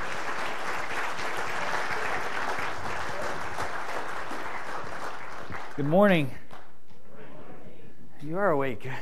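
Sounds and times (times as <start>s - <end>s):
room full of people clapping: 0.0s - 7.0s
speech: 5.8s - 6.4s, 8.2s - 9.0s.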